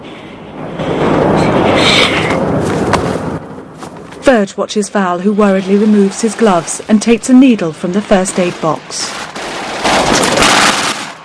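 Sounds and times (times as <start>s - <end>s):
constant roaring: 0.0s - 11.2s
speech: 4.3s - 9.3s
bomber's machine gun firing at a German fighter plane: 9.0s - 11.2s.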